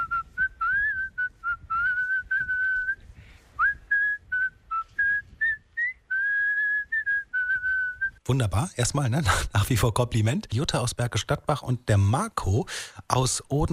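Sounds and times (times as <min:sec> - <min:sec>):
person whistling a catchy song melody: 0:00.0 - 0:08.2
speech: 0:08.3 - 0:13.7.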